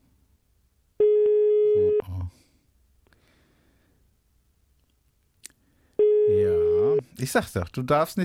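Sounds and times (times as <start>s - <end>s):
telephone ringback tone: 1.0s - 2.0s, 6.0s - 7.0s
speech: 7.2s - 8.2s.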